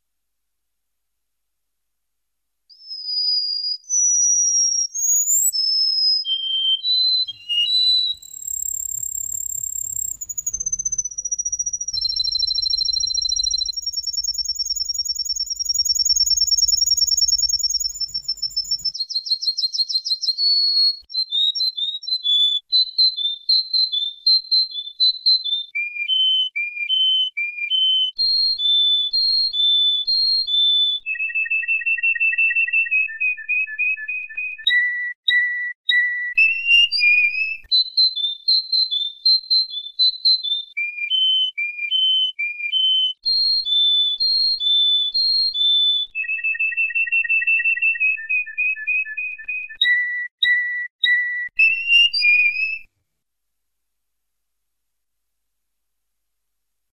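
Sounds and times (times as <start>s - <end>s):
canary singing: 2.7s - 52.9s.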